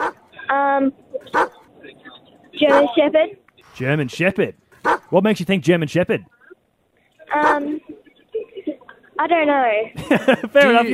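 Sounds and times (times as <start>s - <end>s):
dog barking: 0.0s - 0.2s, 1.3s - 1.6s, 2.6s - 3.0s, 4.8s - 5.1s, 7.3s - 7.7s
speech: 0.8s - 1.4s, 2.6s - 6.4s, 9.2s - 10.9s
laughter: 7.7s - 9.2s, 10.0s - 10.9s.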